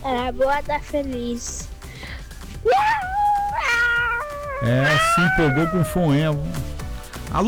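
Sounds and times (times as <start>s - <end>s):
speech: 0.3s - 1.7s, 4.6s - 6.7s, 7.3s - 7.4s
cat meowing: 2.6s - 7.0s.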